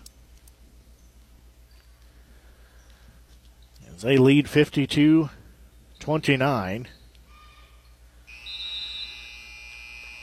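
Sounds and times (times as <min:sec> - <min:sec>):
low hum: 0:00.0 - 0:10.2
speech: 0:04.0 - 0:05.4, 0:06.0 - 0:07.0
basketball game final buzzer: 0:07.3 - 0:10.2.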